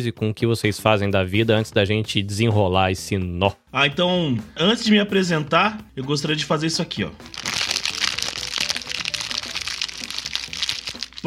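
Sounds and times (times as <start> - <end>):
speech: 0.0 - 7.5
plastic wrapper crinkling: 7.3 - 11.2.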